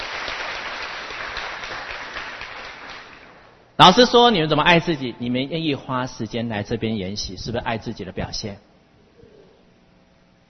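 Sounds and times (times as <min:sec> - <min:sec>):
audience at a youth summer study retreat clapping: 0:00.0 - 0:03.6
speech: 0:03.8 - 0:08.7.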